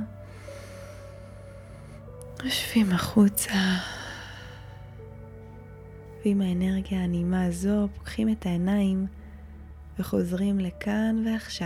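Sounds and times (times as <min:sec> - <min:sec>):
soft sustained musical drone: 0:00.0 - 0:11.6
long deep breath drawn in through the nose during guided meditation: 0:00.2 - 0:02.1
speech: 0:02.4 - 0:04.0, 0:06.2 - 0:09.2, 0:10.0 - 0:11.6.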